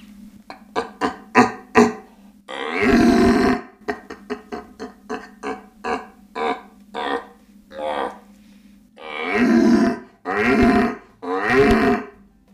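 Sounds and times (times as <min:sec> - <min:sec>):
human voice imitating the rutting roar of an old red stag: 0:01.4 - 0:03.7, 0:05.4 - 0:08.2, 0:09.0 - 0:12.2.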